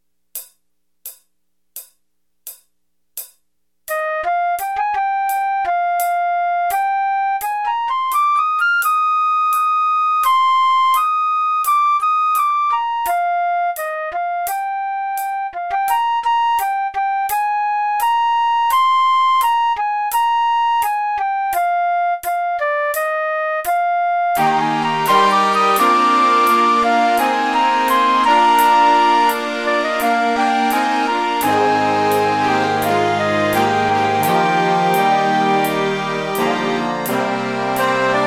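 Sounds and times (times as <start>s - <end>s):
flute: 3.9s - 38.2s
horns: 24.4s - 38.2s.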